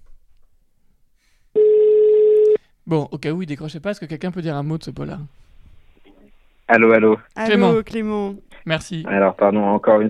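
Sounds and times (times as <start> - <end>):
telephone ringing tone on an outgoing call: 1.6 - 2.6
speech: 2.9 - 5.4, 6.7 - 10.0.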